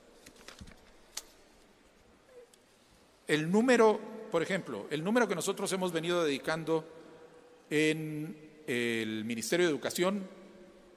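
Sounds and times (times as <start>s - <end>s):
pile of papers rustling while being shuffled and handled: 0.2s - 1.4s
speech: 3.3s - 7.0s, 7.7s - 10.4s.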